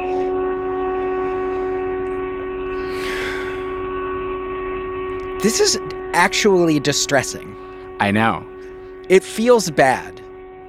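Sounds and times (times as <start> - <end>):
storm warning siren droning on a steady tone: 0.0 - 10.6
breathy rush of noise: 2.7 - 3.9
speech: 5.4 - 8.5, 9.1 - 10.2.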